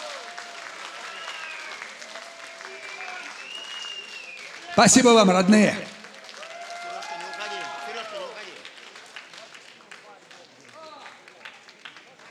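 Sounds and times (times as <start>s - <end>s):
concert audience applause for a musician: 0.0s - 12.2s
speech: 4.8s - 5.9s
people calling and cheering: 4.8s - 6.1s.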